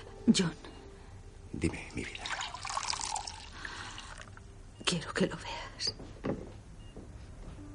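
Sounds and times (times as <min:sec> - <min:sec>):
speech: 0:00.3 - 0:00.7, 0:01.6 - 0:02.3, 0:05.2 - 0:06.3
water poured into a glass at a hospital bedside: 0:01.9 - 0:04.4.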